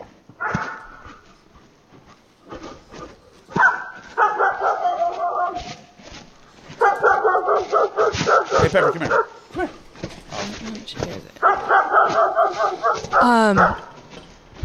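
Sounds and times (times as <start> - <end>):
dog barking: 0.4 - 1.2, 2.6 - 5.9, 6.7 - 9.8, 11.4 - 14.0
speech: 8.7 - 9.1.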